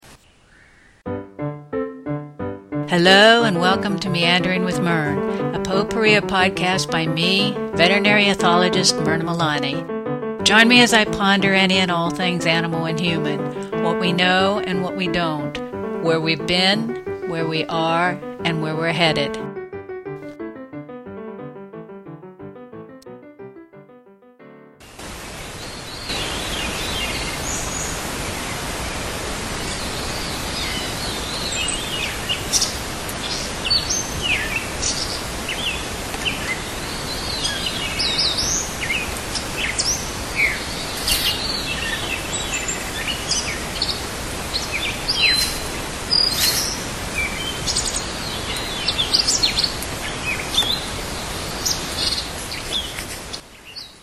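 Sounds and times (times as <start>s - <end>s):
hiss: 0.0s - 1.0s, 1.9s - 19.4s, 24.8s - 54.0s
speech: 2.9s - 9.9s, 10.5s - 15.4s, 16.0s - 19.5s
dawn chorus of many birds chirping and singing: 29.8s - 54.0s.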